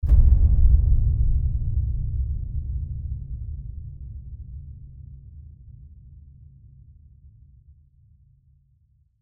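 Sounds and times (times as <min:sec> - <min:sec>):
epic low hit: 0:00.0 - 0:05.5.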